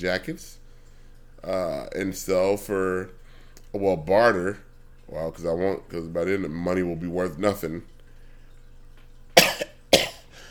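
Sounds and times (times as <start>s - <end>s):
speech: 0.0s - 0.6s, 1.4s - 7.9s
harsh coughs: 9.4s - 10.4s.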